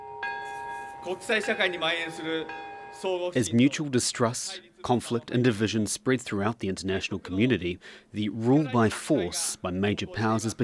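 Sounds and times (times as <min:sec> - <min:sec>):
single deep peace bell strike marking a nuclear bomb anniversary: 0:00.0 - 0:04.2
speech: 0:01.0 - 0:10.6.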